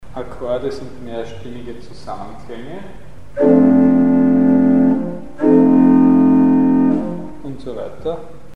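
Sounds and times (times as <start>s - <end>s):
chords: 3.3s - 7.5s.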